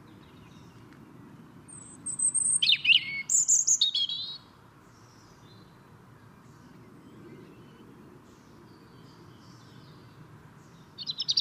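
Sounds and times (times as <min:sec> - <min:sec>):
European robin Erithacus rubecula singing: 0:00.0 - 0:11.4.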